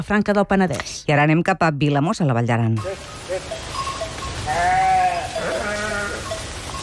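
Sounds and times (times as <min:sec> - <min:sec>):
speech: 0:00.0 - 0:03.6
outdoor noise: 0:00.0 - 0:06.8
flock of sheep and goats bleating in Vilamòs in the Val d'Aran: 0:02.8 - 0:06.8.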